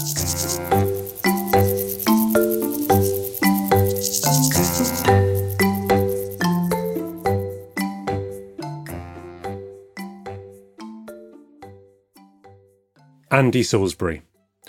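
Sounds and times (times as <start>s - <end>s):
crickets chirping: 0.0s - 8.3s
gentle melodic tune of plucked chiming notes: 0.0s - 12.6s
speech: 13.4s - 14.3s.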